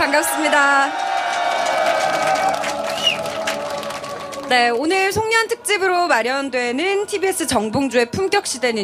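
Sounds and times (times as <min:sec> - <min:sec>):
speech: 0:00.0 - 0:01.1, 0:04.5 - 0:08.8
large outdoor crowd cheering at a candlelight rally: 0:00.0 - 0:04.9
shrill whistles in a crowd: 0:02.8 - 0:03.4.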